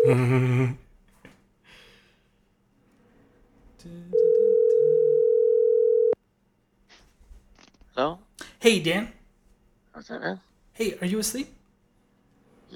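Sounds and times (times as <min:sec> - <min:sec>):
phone call ringback tone: 0:00.0 - 0:00.4, 0:04.1 - 0:06.2
speech: 0:00.1 - 0:00.8, 0:08.0 - 0:09.2, 0:10.0 - 0:11.6.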